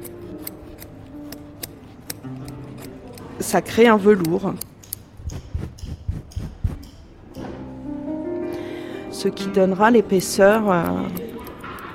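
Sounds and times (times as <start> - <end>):
curved scissors cutting looped carpet yarn: 0.0 - 7.0, 10.0 - 11.9
speech: 3.4 - 4.7, 9.2 - 11.3.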